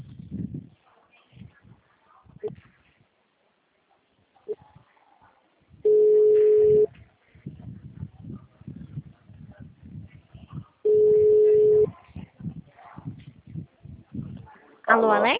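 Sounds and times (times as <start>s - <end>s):
telephone busy tone after a dropped call: 5.9s - 6.9s, 10.9s - 11.9s.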